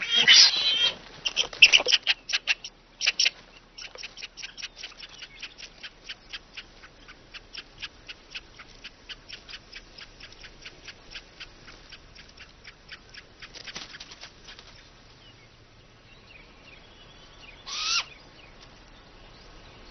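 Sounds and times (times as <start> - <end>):
great grey owl chicks calling: 0.0 - 15.6, 16.3 - 19.8.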